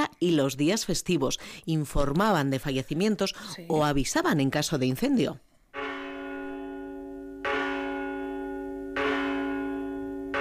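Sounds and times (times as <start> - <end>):
speech: 0.1 - 5.5
church bells ringing, calling to mass: 5.8 - 10.3.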